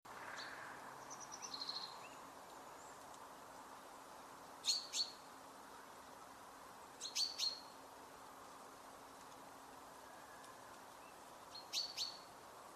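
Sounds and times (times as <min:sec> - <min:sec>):
steady background hiss: 0:00.1 - 0:12.7
common chaffinch Fringilla coelebs chirping: 0:00.3 - 0:03.1, 0:04.6 - 0:05.4, 0:06.9 - 0:07.8, 0:10.0 - 0:12.4.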